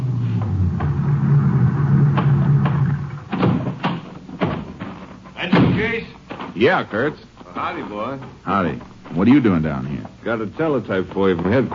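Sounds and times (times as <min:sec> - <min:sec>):
car engine rumbling as the vehicle rolls in and stops: 0:00.0 - 0:03.4
sharp knocks and clunks: 0:02.1 - 0:06.6
speech: 0:06.6 - 0:11.7.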